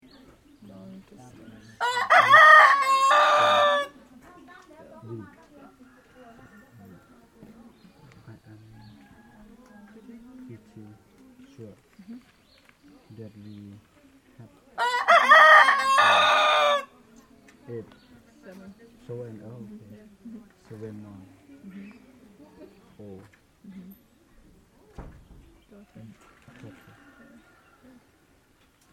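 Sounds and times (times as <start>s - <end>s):
rooster crowing at a bus stop: 1.8s - 4.0s, 14.8s - 16.9s.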